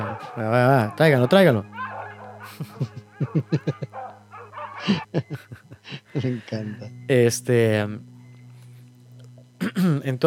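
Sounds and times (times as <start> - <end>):
dogs barking: 0.0 - 1.0, 1.6 - 5.1
speech: 0.2 - 1.8, 2.5 - 4.1, 4.8 - 8.1, 9.6 - 10.2
laughter: 1.7 - 6.8.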